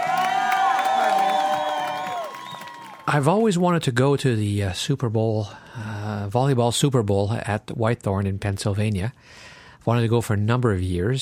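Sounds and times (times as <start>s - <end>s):
people shouting and whooping at a volleyball tournament final: 0.0s - 3.1s
crowd cheering and applauding at a volleyball tournament final: 0.0s - 3.5s
speech: 3.1s - 11.2s.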